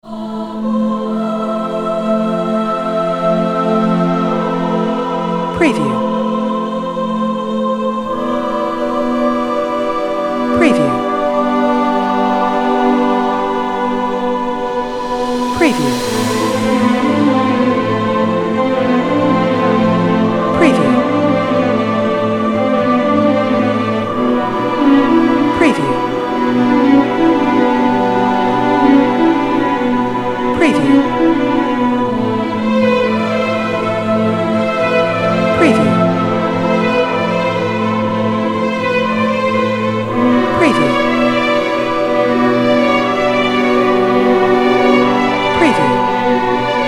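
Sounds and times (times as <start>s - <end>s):
dark suspense horror soundtrack: 0.0s - 46.8s
cinematic female voice storytelling: 5.5s - 6.2s, 10.4s - 22.2s, 23.7s - 32.5s, 35.5s - 36.3s, 40.1s - 41.6s, 44.9s - 46.8s.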